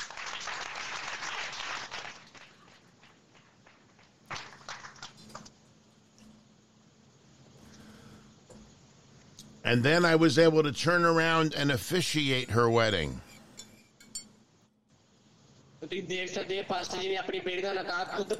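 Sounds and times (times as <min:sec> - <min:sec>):
audience applause at a wedding: 0:00.0 - 0:05.4
speech: 0:09.7 - 0:13.3, 0:16.1 - 0:18.3.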